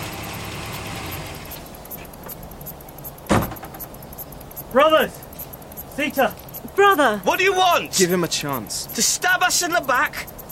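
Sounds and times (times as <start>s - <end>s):
truck approaching and stopping: 0.0s - 9.1s
vehicle engine rumbling: 0.0s - 10.5s
car door opening and clunking: 3.3s - 4.0s
speech: 4.7s - 5.2s, 6.0s - 10.4s.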